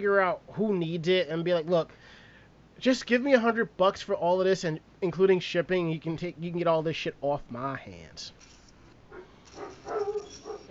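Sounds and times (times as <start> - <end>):
speech: 0.0 - 2.2, 2.8 - 8.5
dog whimpering: 9.2 - 10.6.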